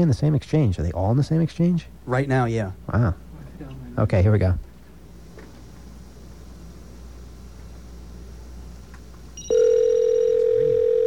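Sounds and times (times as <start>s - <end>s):
speech: 0.0s - 3.2s, 4.0s - 4.7s
electronic ringing tone of a PCS mobile phone: 9.4s - 11.0s.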